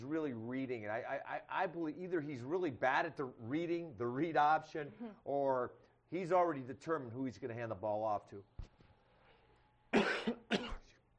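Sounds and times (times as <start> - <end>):
speech: 0.0 - 8.7
throat-clearing coughs: 9.9 - 11.0.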